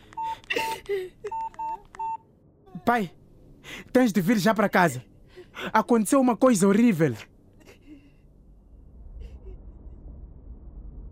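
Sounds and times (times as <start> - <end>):
telephone keypad tones as a number is dialed: 1.3 - 2.2
speech: 2.9 - 7.3.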